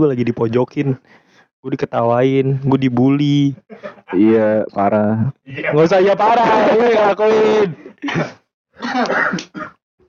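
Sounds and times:
speech: 0:00.0 - 0:09.7
laughter: 0:03.6 - 0:04.6
people coughing: 0:07.9 - 0:09.8.

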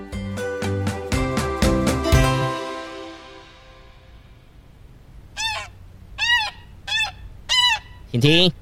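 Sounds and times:
bright musical jingle: 0:00.0 - 0:04.4
duck quacking: 0:05.4 - 0:08.2.

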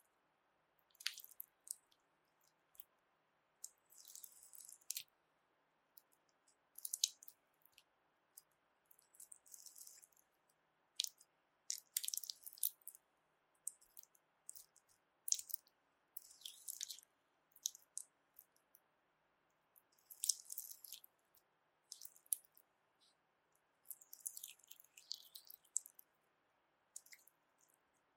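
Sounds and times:
slippery jelly squished and handled: 0:01.0 - 0:01.9, 0:03.6 - 0:05.1, 0:06.8 - 0:07.4, 0:08.4 - 0:10.2, 0:11.0 - 0:13.0, 0:13.7 - 0:15.6, 0:16.2 - 0:18.5, 0:20.0 - 0:21.1, 0:21.9 - 0:22.6, 0:23.8 - 0:26.0, 0:27.0 - 0:27.3.

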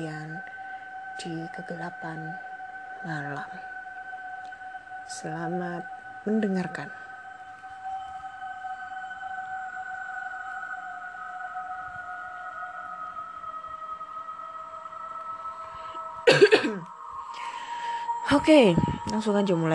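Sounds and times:
eerie droning tone: 0:00.0 - 0:19.7
speech: 0:01.2 - 0:03.7, 0:05.1 - 0:07.0, 0:18.4 - 0:19.7
person clearing throat: 0:16.3 - 0:16.9
person coughing: 0:16.3 - 0:16.9.

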